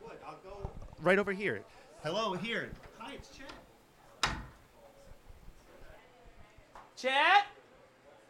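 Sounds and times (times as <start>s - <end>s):
soft noises: 0.4s - 7.0s
speech: 1.0s - 3.6s, 7.0s - 7.5s
door shutting: 2.5s - 5.8s.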